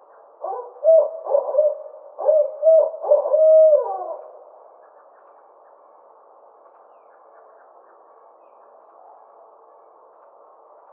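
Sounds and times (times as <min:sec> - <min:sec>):
barred owl hooting: 0:00.4 - 0:04.4.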